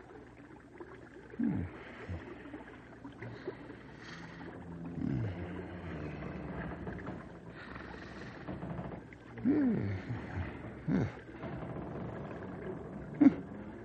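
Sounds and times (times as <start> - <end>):
people snoring and groaning in sleep: 1.4 - 2.4, 4.0 - 13.8.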